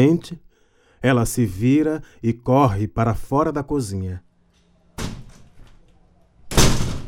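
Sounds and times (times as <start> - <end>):
speech: 0.0 - 0.4, 1.0 - 4.3
front door slamming shut: 5.0 - 5.8, 6.5 - 7.0.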